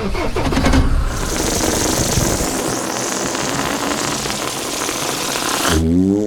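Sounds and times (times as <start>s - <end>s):
bus engine struggling to start: 0.0s - 2.7s
bus engine backfiring: 0.0s - 5.8s.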